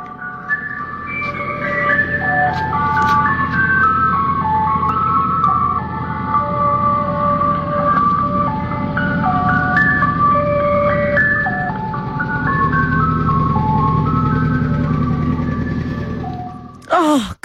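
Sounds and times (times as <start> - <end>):
ice cream truck jingle: 0.0 - 16.9.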